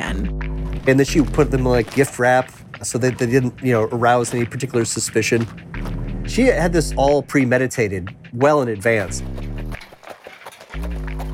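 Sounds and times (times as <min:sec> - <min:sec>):
sustained musical tones: 0:00.0 - 0:07.0, 0:10.7 - 0:11.3
speech: 0:00.1 - 0:09.4
horse hooves clip-clopping while pulling a buggy: 0:00.8 - 0:06.5, 0:08.4 - 0:11.3.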